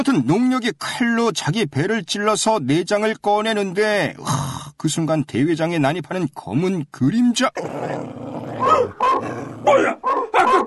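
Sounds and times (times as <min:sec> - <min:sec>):
speech: 0:00.0 - 0:10.6
dog growling: 0:07.6 - 0:10.4
dog barking: 0:08.6 - 0:10.6.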